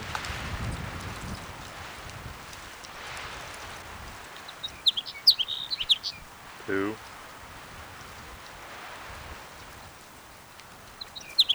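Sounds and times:
steady wind noise: 0.0 - 11.5
house sparrow chirping: 4.3 - 7.0, 10.9 - 11.5
speech: 6.7 - 7.0.

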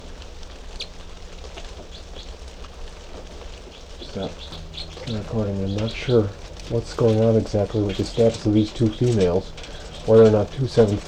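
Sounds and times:
small birds chirping in an aviary cell: 0.0 - 11.0
steady hiss: 0.0 - 11.0
speech: 4.2 - 11.0.

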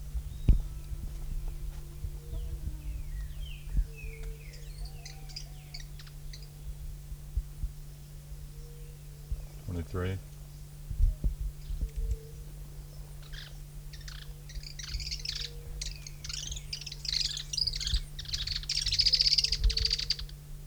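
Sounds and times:
steady low hum: 0.0 - 20.6
several birds chirping and trilling: 0.2 - 6.8, 11.6 - 20.4
speech: 9.9 - 10.3.

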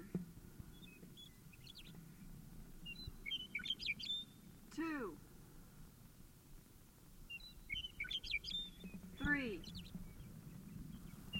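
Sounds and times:
bird chirping: 0.0 - 4.9, 7.2 - 11.3.

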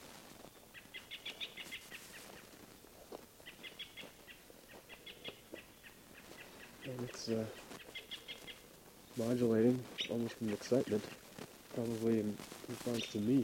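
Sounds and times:
other birds calling faintly in woodland: 0.4 - 13.4
American robin alarm calls: 0.7 - 2.6, 3.4 - 9.2, 9.8 - 11.2
speech: 6.9 - 7.6, 9.2 - 11.2, 11.8 - 13.4.

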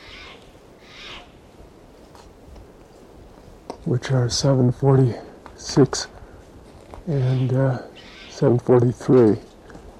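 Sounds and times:
decoy birds calling softly: 0.0 - 1.5, 7.0 - 8.6
hiss: 0.0 - 9.9
speech: 3.9 - 6.1, 7.1 - 9.5.

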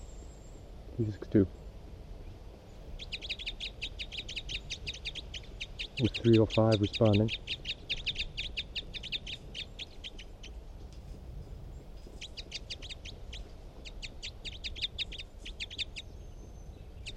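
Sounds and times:
constant low rumble: 0.0 - 17.1
speech: 1.0 - 1.6, 6.0 - 7.6
bird chirps: 2.7 - 10.6, 11.6 - 17.1.

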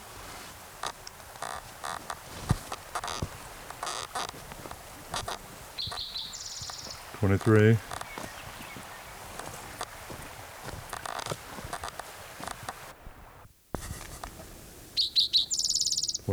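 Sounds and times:
bird chirps and clicks: 0.8 - 12.9, 15.0 - 16.3
speech: 7.2 - 7.9.

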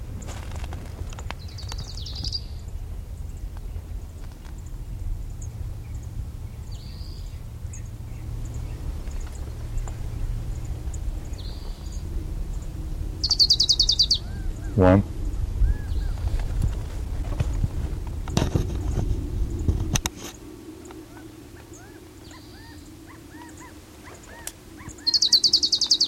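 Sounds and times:
low steady rumble: 0.0 - 26.0
crowned warbler singing on a divide between two canyons: 1.0 - 16.8, 20.8 - 26.0
speech: 14.8 - 15.1.

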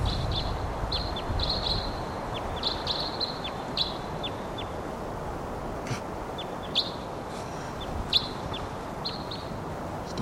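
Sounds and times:
steady broadband outdoor hiss: 0.0 - 10.2
wild birds chirping: 0.0 - 10.2.

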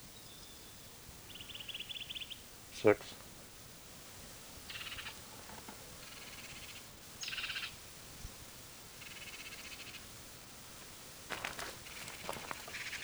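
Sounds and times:
bird giving harsh buzzy protest calls: 0.0 - 13.0
steady hiss: 0.0 - 13.0
speech: 2.8 - 3.2.

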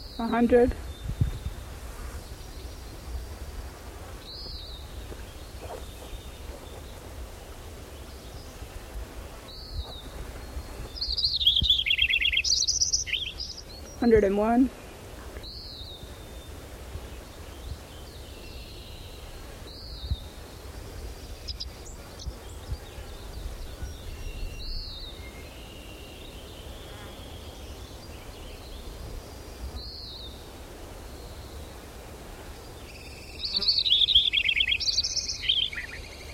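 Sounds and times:
robin singing: 0.0 - 30.4, 32.7 - 36.3
speech: 0.2 - 0.9, 14.0 - 14.8.

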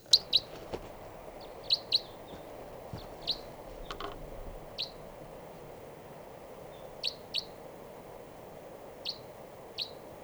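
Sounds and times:
type 3 crossbill calls: 0.0 - 10.1
low steady outdoor rumble: 0.0 - 10.2.

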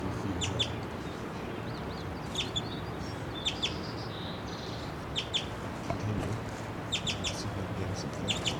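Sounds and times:
steady outdoor hiss: 0.0 - 8.5
small bird chittering on the ground: 0.3 - 5.5, 6.9 - 7.5, 8.2 - 8.5.

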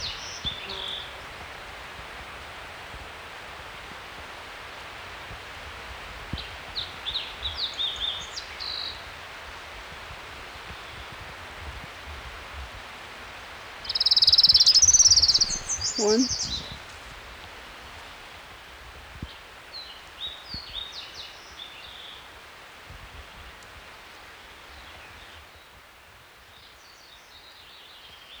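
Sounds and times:
hiss: 0.0 - 27.1
orange-crowned warbler singing along a mountain creek at 6,300 feet: 13.9 - 16.8
speech: 16.0 - 16.4.

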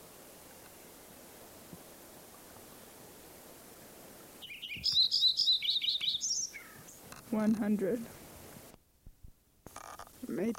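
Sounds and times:
faint noise: 0.0 - 10.5
Lincoln's sparrow singing at Bluff Lake: 4.4 - 7.0
speech: 4.8 - 5.2, 7.3 - 8.2, 10.4 - 10.5.

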